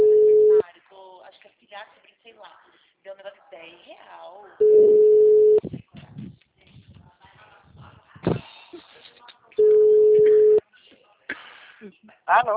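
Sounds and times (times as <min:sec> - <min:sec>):
telephone busy tone after a dropped call: 0:00.0 - 0:00.6, 0:04.6 - 0:05.6, 0:09.6 - 0:10.6
speech: 0:12.3 - 0:12.5.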